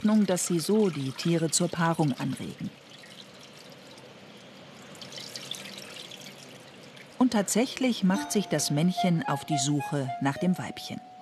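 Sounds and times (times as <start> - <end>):
speech: 0.0 - 2.8, 7.2 - 11.1
water pouring for simulated monsoon rain: 0.0 - 7.3.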